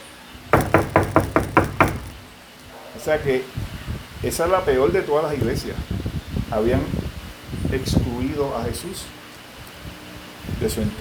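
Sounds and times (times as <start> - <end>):
firm knocking on a door: 0.6 - 2.2
speech: 3.0 - 3.6, 4.2 - 7.0, 7.7 - 9.2, 10.6 - 10.9.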